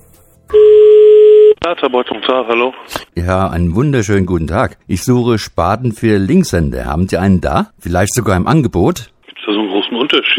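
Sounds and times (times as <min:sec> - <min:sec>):
telephone tone as a caller places a call: 0:00.5 - 0:01.6
speech: 0:01.7 - 0:10.3.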